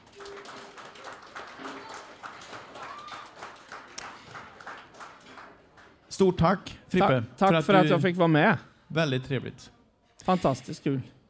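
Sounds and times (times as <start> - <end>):
small audience applauding at a live event: 0.0 - 6.1
speech: 6.2 - 11.2.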